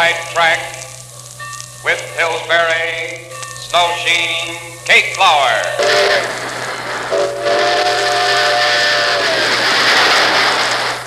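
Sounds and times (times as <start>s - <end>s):
train rumbling: 0.0s - 11.0s
speech: 0.1s - 0.9s, 1.8s - 8.2s
steam train whistle on the rails: 5.8s - 11.0s.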